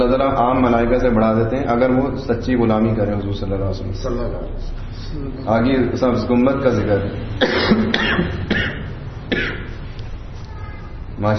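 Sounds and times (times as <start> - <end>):
speech: 0.0 - 8.7, 9.3 - 9.7, 11.2 - 11.3
harsh coughs: 7.4 - 9.9.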